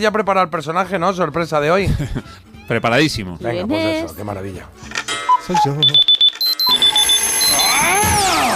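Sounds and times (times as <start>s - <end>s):
speech: 0.0s - 6.2s
laughter: 1.8s - 2.4s
alarm clock beeping in electronic pulses: 5.3s - 8.2s.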